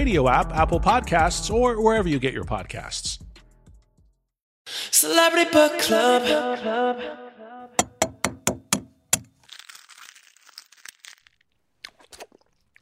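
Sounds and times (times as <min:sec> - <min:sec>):
speech: 0:00.1 - 0:03.2, 0:04.7 - 0:07.8
crunchy cracking of an egg being eaten: 0:09.1 - 0:12.8.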